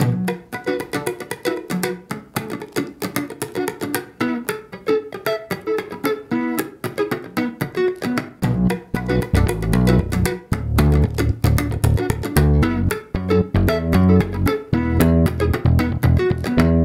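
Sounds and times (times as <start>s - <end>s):
bass guitar: 0.0s - 0.4s, 8.4s - 16.8s
rhythm guitar: 0.0s - 16.8s.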